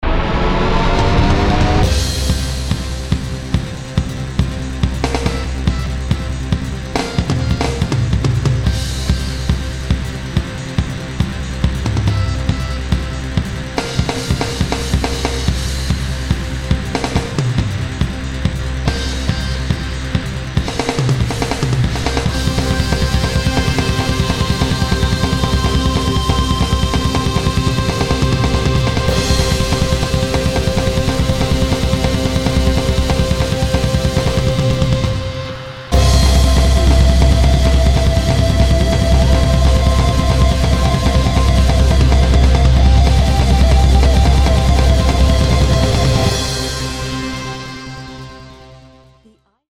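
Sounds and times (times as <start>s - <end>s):
heavy drums: 0.0s - 48.6s
synth: 0.0s - 49.2s.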